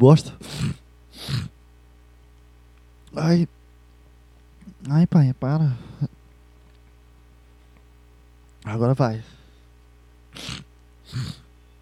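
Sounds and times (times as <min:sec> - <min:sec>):
speech: 0:00.0 - 0:00.8, 0:03.2 - 0:03.6, 0:04.8 - 0:06.2, 0:08.6 - 0:09.4, 0:10.4 - 0:11.4
person sneezing: 0:00.4 - 0:01.5, 0:10.4 - 0:11.5.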